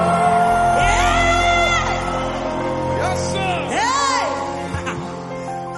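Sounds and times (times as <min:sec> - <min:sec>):
large audience at a Christian worship service shouting and cheering: 0:00.0 - 0:05.4.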